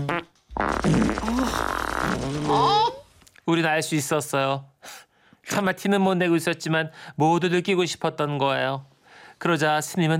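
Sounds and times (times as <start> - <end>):
several people in a group breaking wind: 0.0 - 3.0
speech: 0.8 - 10.1.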